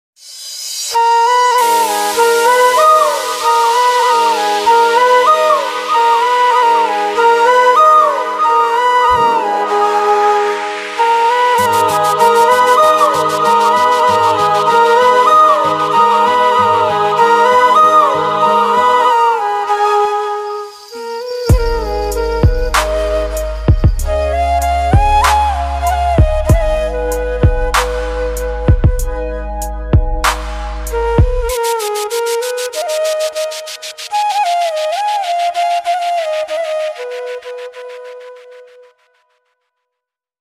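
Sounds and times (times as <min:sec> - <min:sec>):
sad flute background music ringtone: 0:00.8 - 0:39.3.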